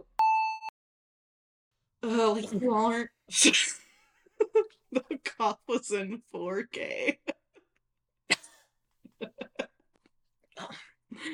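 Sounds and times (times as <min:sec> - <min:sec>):
speech: 0:02.0 - 0:03.8, 0:04.9 - 0:07.4, 0:09.2 - 0:09.7, 0:10.6 - 0:11.3
person coughing dry hacking coughs: 0:08.3 - 0:08.7
laughter: 0:09.1 - 0:09.8.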